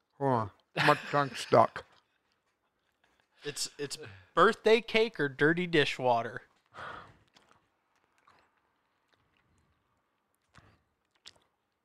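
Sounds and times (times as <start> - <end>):
speech: 0.4 - 1.9, 3.4 - 7.0
wet chewing of a jelly bean into the microphone: 1.8 - 3.4, 6.5 - 11.8.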